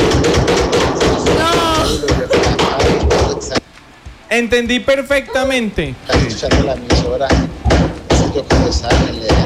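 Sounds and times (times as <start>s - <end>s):
hammer strikes: 0.0s - 3.6s, 6.1s - 9.4s
speech: 4.3s - 7.6s, 8.4s - 9.4s.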